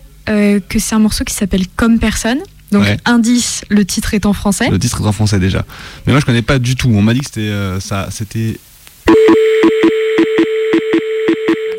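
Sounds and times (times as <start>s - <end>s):
speech: 0.3s - 9.8s
electronic telephone-line tone: 9.1s - 11.7s.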